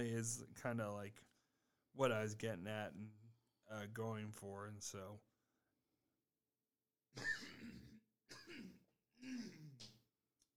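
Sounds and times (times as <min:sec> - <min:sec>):
speech: 0:00.0 - 0:01.3, 0:02.0 - 0:05.3, 0:07.1 - 0:07.7, 0:08.4 - 0:09.9
wet gravelly cough: 0:07.2 - 0:09.8
person clearing throat: 0:07.2 - 0:10.0.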